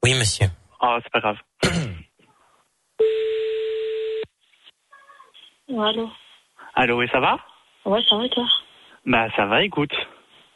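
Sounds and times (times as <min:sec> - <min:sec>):
speech: 0:00.1 - 0:01.8, 0:05.7 - 0:06.2, 0:06.8 - 0:10.2
telephone ringback tone while calling a number back: 0:03.0 - 0:04.2.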